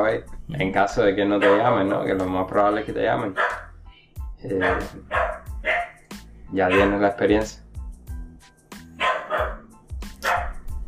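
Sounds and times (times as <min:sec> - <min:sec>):
speech: 0:00.0 - 0:03.6, 0:04.4 - 0:05.2, 0:06.5 - 0:07.6
low rhythmic thumping: 0:00.0 - 0:08.4, 0:09.0 - 0:10.8
dog barking in loud yaps: 0:01.3 - 0:01.8, 0:03.4 - 0:03.8, 0:04.5 - 0:06.0, 0:06.6 - 0:07.0, 0:09.0 - 0:10.6.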